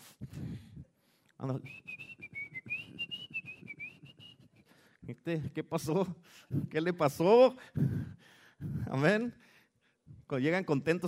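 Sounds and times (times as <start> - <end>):
speech: 1.4 - 2.0, 5.2 - 8.1, 8.9 - 9.4, 10.3 - 11.0
person whistling a short wavering melody: 1.6 - 4.8.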